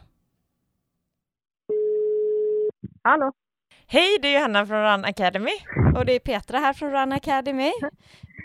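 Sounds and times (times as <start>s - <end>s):
telephone ringback tone: 1.7s - 2.7s
speech: 3.0s - 8.4s.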